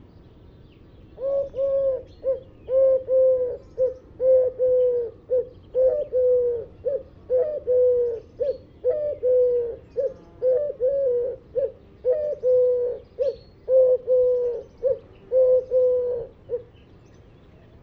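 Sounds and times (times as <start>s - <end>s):
Eurasian collared dove Streptopelia decaocto calling: 0.8s - 17.8s.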